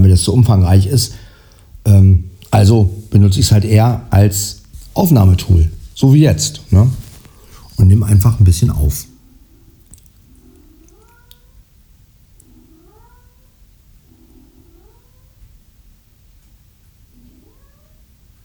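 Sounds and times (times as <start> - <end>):
speech: 0.0 - 7.0, 7.8 - 9.1
low hum: 0.0 - 18.4
cat meowing for attention: 10.4 - 11.8, 12.4 - 13.6, 14.3 - 15.5, 17.2 - 18.1.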